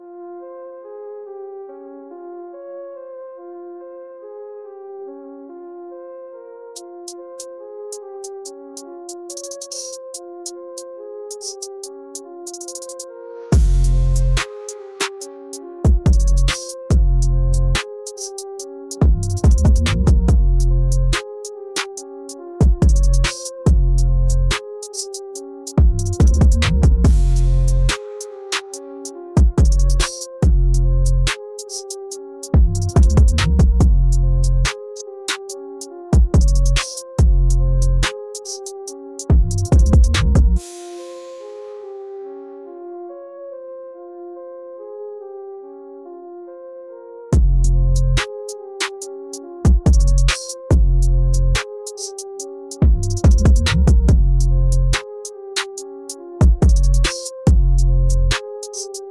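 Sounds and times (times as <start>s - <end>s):
frenzied bass assault: 13.6s - 14.4s, 15.9s - 17.8s, 19.0s - 21.2s, 22.6s - 24.6s, 25.8s - 27.9s, 29.4s - 31.3s, 32.6s - 34.7s, 36.4s - 38.1s, 39.3s - 40.6s, 47.4s - 48.2s, 49.7s - 51.6s, 52.8s - 55.0s, 56.6s - 58.4s.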